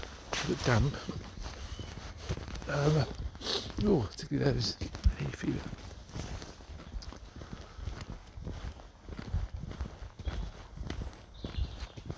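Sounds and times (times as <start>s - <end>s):
soft outdoor hush: 0.0s - 9.0s
footsteps stomping on a path: 0.0s - 12.1s
speech: 0.5s - 1.4s, 2.7s - 5.8s.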